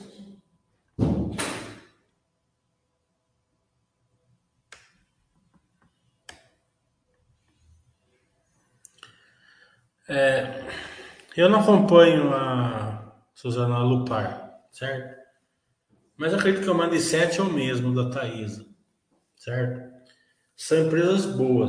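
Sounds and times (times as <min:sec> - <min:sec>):
door shutting with a solid thud: 0:01.0 - 0:01.9
speech: 0:10.1 - 0:15.2, 0:16.2 - 0:18.7, 0:19.4 - 0:19.9, 0:20.6 - 0:21.6.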